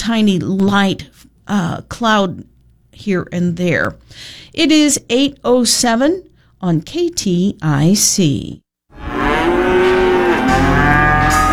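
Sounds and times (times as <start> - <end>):
speech: 0.0 - 9.1
cow mooing: 8.9 - 11.5.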